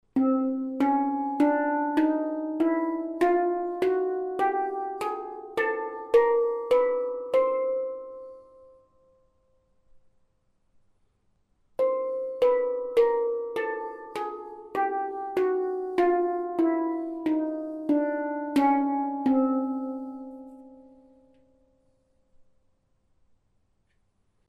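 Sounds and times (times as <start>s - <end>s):
chromatic handpan playing: 0.0s - 9.1s, 11.8s - 21.8s.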